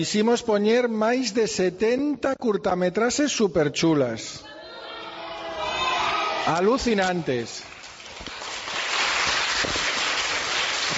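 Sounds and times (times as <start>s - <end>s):
speech: 0.0s - 4.5s, 6.4s - 7.7s
large crowd applauding enthusiastically: 5.8s - 10.9s.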